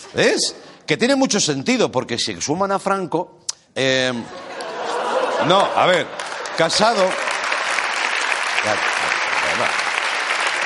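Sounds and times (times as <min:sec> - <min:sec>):
speech: 0:00.1 - 0:04.7, 0:05.4 - 0:07.3, 0:08.6 - 0:08.9, 0:09.6 - 0:09.8
laughter: 0:04.2 - 0:07.3
audience applause: 0:05.1 - 0:10.6.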